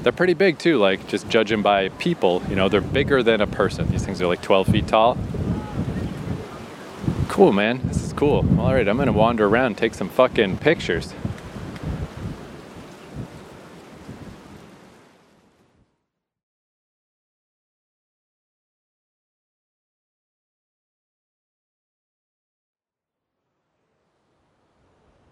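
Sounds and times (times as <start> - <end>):
speech: 0.0 - 5.4, 7.4 - 11.3
strong wind by the ocean buffeting the microphone: 0.0 - 14.9
ocean surf: 0.0 - 15.6.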